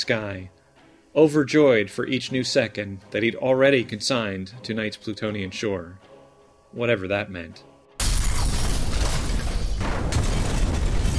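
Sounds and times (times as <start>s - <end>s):
speech: 0.0s - 0.6s, 1.2s - 6.1s, 6.7s - 7.7s
booms of train cars crashing into a ravine: 8.0s - 11.1s.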